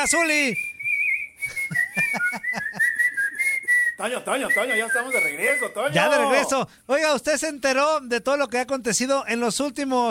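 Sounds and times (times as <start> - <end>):
speech: 0.0 - 0.7, 2.1 - 2.9, 4.0 - 10.0
person whistling a clear sustained tune: 0.5 - 5.8
laughter: 1.7 - 3.0.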